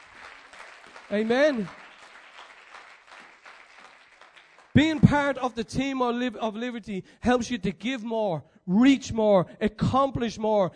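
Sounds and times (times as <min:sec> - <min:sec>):
church congregation applause: 0:00.0 - 0:05.2
speech: 0:01.1 - 0:01.8, 0:04.8 - 0:10.7.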